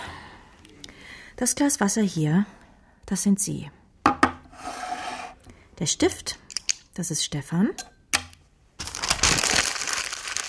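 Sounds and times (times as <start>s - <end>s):
speech: 1.4s - 3.8s, 5.8s - 7.9s
paper being crumpled into a ball: 8.8s - 10.4s.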